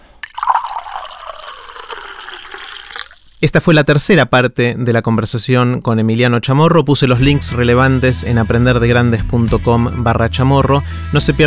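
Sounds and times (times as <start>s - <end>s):
water pouring into a glass: 0.0s - 3.7s
speech: 3.4s - 11.4s.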